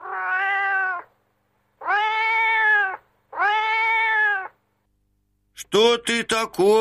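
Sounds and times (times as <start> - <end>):
cat meowing plaintively: 0.0 - 1.2, 1.8 - 4.6
speech: 5.7 - 6.7.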